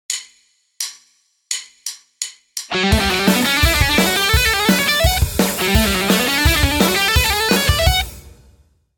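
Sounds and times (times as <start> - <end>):
fast guitar lick: 2.7 - 8.2.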